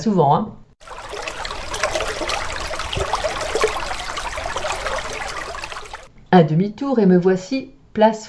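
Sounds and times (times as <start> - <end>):
speech: 0.0 - 0.6, 6.3 - 8.2
water cascading from a fountain basin overflow into the pool: 0.8 - 6.1.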